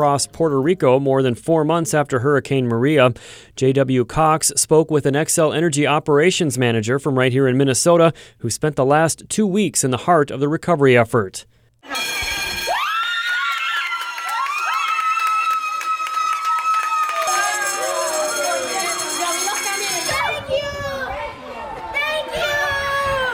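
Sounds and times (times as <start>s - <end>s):
speech: 0.0s - 12.3s
school bell ringing: 11.8s - 13.4s, 17.1s - 20.8s
crowd of students cheering and shouting: 11.8s - 23.3s.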